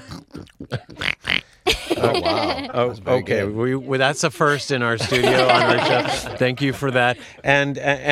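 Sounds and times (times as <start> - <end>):
person imitating pig snorting grunts: 0.0 - 1.6
laughter: 1.7 - 3.2, 5.0 - 7.5
speech: 2.0 - 8.1.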